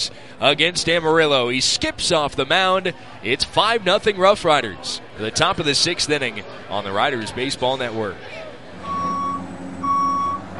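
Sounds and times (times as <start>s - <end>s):
speech: 0.0s - 8.4s
low engine rumble: 8.3s - 10.5s
reversing beeps from construction equipment: 8.8s - 10.5s.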